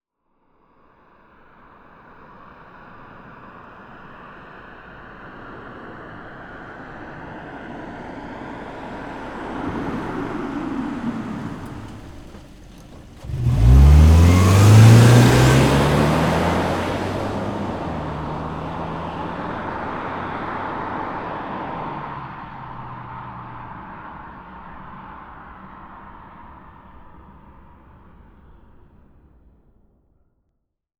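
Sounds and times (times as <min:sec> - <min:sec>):
Subaru Legacy 2.5 GT approaching, stopping and driving away fast: 0:04.0 - 0:28.0.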